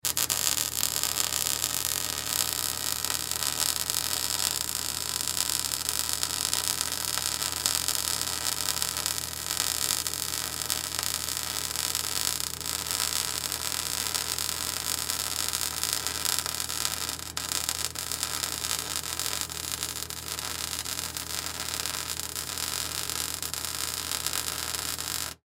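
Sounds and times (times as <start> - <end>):
welding gun sparking: 0.0 - 25.4.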